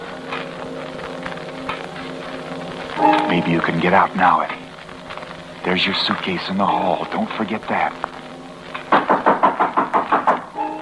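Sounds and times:
low steady hum: 0.0s - 10.8s
speech: 3.0s - 4.6s, 5.6s - 8.2s
knocking on a door: 8.9s - 10.4s.

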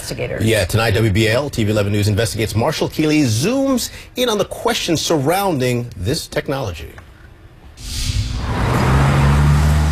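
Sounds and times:
speech: 0.1s - 7.0s
hissing burst of a vehicle going by: 7.8s - 9.9s
loud engine drone of passing cars: 7.8s - 9.9s
traffic rumbling at a city intersection: 7.8s - 9.9s.

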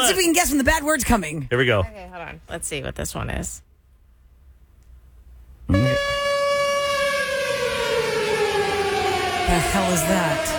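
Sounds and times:
speech: 0.0s - 3.7s, 9.5s - 10.5s
siren-like tone: 5.7s - 10.5s.

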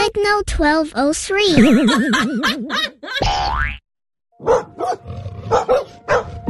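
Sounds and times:
speech: 0.1s - 2.9s
laughter: 1.5s - 3.2s
cartoonish boing and swooping sound effects: 3.2s - 3.8s
dog barking aggressively: 4.4s - 6.4s.

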